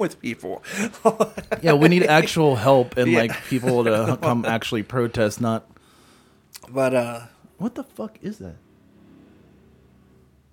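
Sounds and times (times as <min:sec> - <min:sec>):
speech: 0:00.0 - 0:05.7, 0:06.7 - 0:08.6
laughter: 0:00.7 - 0:05.2
motorcycle engine revving outside: 0:08.6 - 0:10.4.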